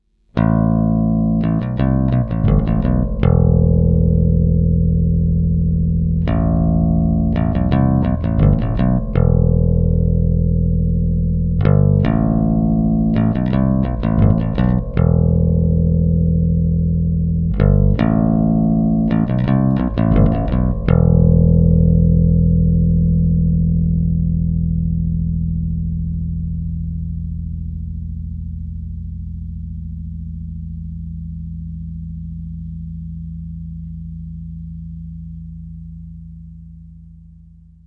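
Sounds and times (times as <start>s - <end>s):
bass riff: 0.0s - 37.8s.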